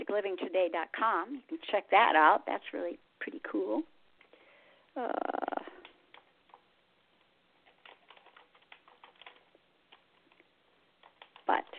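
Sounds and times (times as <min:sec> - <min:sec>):
speech: 0:00.1 - 0:04.0, 0:05.0 - 0:05.5, 0:11.5 - 0:11.7
typing a note on a computer keyboard: 0:07.6 - 0:10.4, 0:11.0 - 0:11.6.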